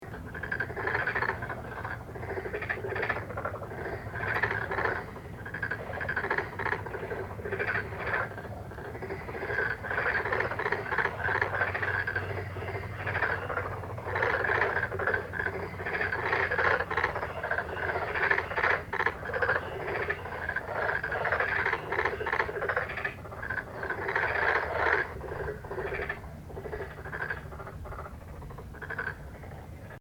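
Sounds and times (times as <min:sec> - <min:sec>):
Pelophylax nigromaculatus calling: 0:00.0 - 0:29.9.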